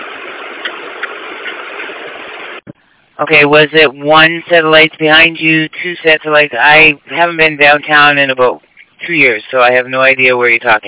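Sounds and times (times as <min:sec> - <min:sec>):
street traffic at a bus stop: 0:00.0 - 0:07.3
constant engine rumble: 0:00.0 - 0:09.9
speech: 0:03.2 - 0:10.8.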